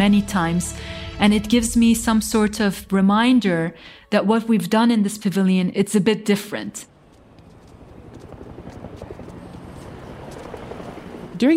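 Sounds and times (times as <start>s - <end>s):
low throbbing rumble: 0.0s - 3.6s
speech: 0.0s - 6.9s, 11.4s - 11.5s
footsteps clattering: 7.0s - 11.1s.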